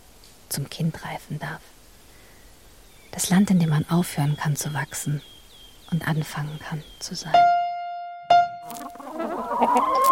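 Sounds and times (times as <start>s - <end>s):
speech: 0.5s - 1.8s, 3.1s - 7.5s
hens freed from battery cages clucking and murmuring: 8.6s - 10.1s.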